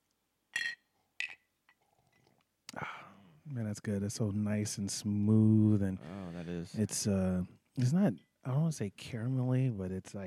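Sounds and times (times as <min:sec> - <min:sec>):
whiskey glasses clinking in a toast: 0:00.6 - 0:01.5
speech: 0:02.8 - 0:10.2.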